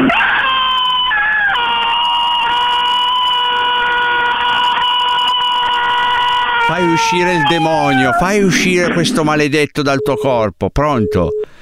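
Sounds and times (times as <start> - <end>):
person screaming during a mock exorcism: 0.1 - 8.5
speech: 6.9 - 11.6.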